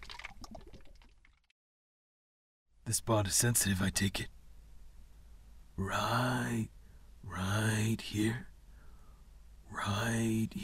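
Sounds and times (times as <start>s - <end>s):
liquid sloshing inside a plastic water bottle: 0.0s - 1.5s
speech: 2.9s - 4.4s, 5.8s - 8.5s, 9.7s - 10.6s.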